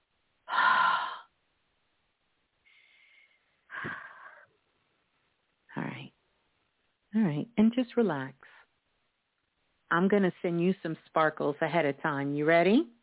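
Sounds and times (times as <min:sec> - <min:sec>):
person exhaling: 0:00.5 - 0:01.3, 0:02.7 - 0:04.5
speech: 0:07.2 - 0:08.5, 0:09.9 - 0:13.0.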